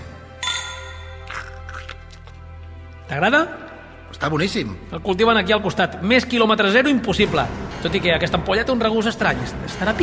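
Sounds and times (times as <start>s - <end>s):
glasses clinking in a toast: 0.4s - 1.3s
speech: 3.1s - 10.0s.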